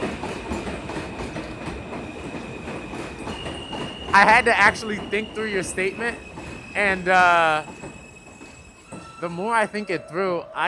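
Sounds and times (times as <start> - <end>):
rolling train wheels and rhythmic rail clatter: 0.0 - 10.6
train rumbling past: 0.0 - 10.6
thin high metallic squeal: 3.2 - 10.6
speech: 4.2 - 7.8, 9.2 - 10.6.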